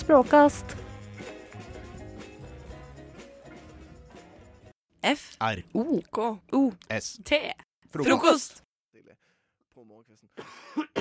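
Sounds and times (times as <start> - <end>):
speech: 0.1 - 0.8, 5.0 - 9.2, 9.8 - 10.9
harsh cough: 10.4 - 10.9.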